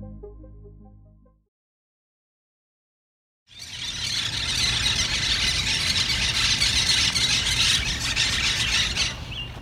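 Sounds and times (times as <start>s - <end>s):
monk parakeets making raucous calls: 3.5s - 9.6s.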